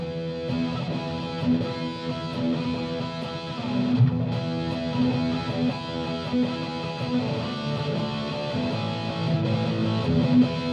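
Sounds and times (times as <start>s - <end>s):
distorted electric guitar playing heavier rock through an amplifier: 0.0s - 10.7s.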